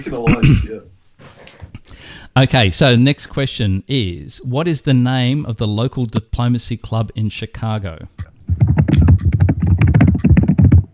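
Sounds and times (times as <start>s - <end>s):
speech: 0.0s - 1.0s, 2.4s - 8.2s
rapid forceful keyboard typing with heavy key strikes: 8.5s - 10.9s.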